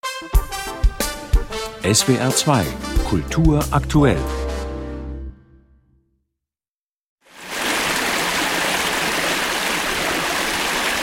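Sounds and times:
speech: 0:01.8 - 0:04.4
mountain brook rushing loudly: 0:07.3 - 0:11.0.

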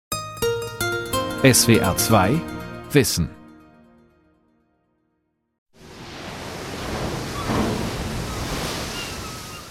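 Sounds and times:
speech: 0:01.4 - 0:03.4
waves breaking against a ship's bow off Spitsbergen: 0:05.8 - 0:09.7.

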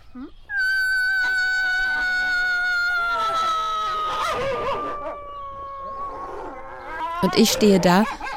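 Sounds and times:
grey wolves and arctic wolves howling together: 0:01.1 - 0:08.3
speech: 0:07.2 - 0:08.2.

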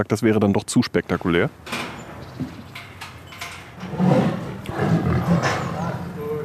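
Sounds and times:
speech: 0:00.0 - 0:02.6
tigress roaring while let into her outdoor enclosure: 0:03.8 - 0:06.4.

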